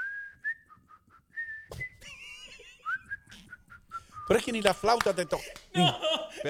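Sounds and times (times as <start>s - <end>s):
person whistling an off-key tune: 0.0s - 5.1s
laughter: 2.0s - 3.0s, 5.2s - 6.4s
speech: 4.3s - 6.4s.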